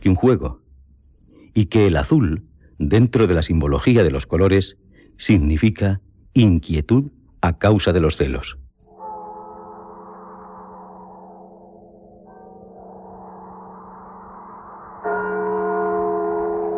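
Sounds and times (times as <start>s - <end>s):
speech: 0.0s - 0.6s, 1.6s - 8.6s
church bells tolling for the dead on All Souls' night: 8.9s - 11.2s, 15.0s - 16.7s.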